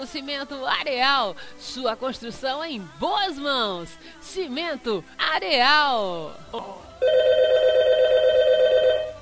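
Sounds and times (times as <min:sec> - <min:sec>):
speech: 0:00.0 - 0:07.7
telephone ringing for an incoming call: 0:07.0 - 0:09.1.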